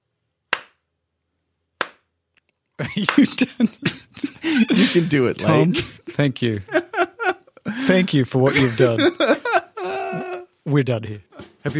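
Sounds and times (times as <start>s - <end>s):
slow hand claps: 0.5s - 0.8s, 1.8s - 2.1s, 2.9s - 3.4s
speech: 2.8s - 6.8s, 7.8s - 9.4s, 10.7s - 11.7s
laughter: 2.8s - 10.5s.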